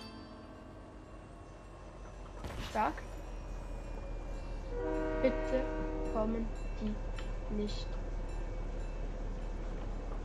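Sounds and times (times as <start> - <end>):
train with enemies on it rumbling in a video game: 0.0 - 10.2
speech: 2.7 - 3.2, 4.8 - 8.0
horn-like tone: 4.7 - 6.4.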